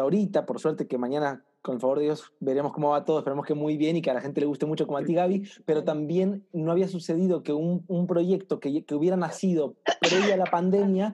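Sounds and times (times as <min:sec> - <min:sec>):
speech: 0:00.0 - 0:11.1
sneeze: 0:09.9 - 0:10.5.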